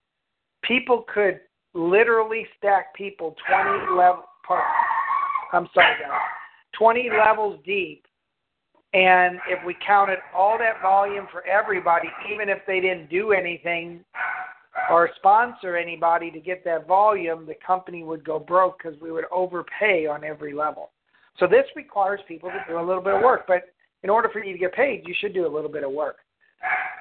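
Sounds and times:
speech: 0.7 - 4.8, 5.5 - 8.1, 8.9 - 26.9
dog whining: 3.5 - 6.5, 14.2 - 15.0, 26.6 - 26.9
dog barking: 4.6 - 7.4, 9.3 - 12.4, 14.2 - 15.0, 22.5 - 23.4, 26.6 - 26.9.

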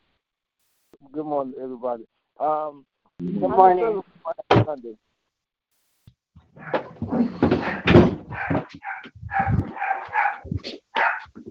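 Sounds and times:
speech: 0.9 - 5.1
knocking and clattering: 6.4 - 11.5
small dog yapping: 6.6 - 11.4.

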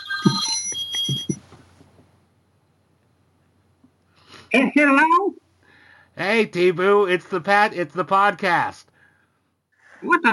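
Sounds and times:
telephone ringing with electronic tone: 0.0 - 1.4
soft low thumps: 0.3 - 1.4
speech: 4.8 - 5.2, 6.2 - 8.9, 10.0 - 10.3.

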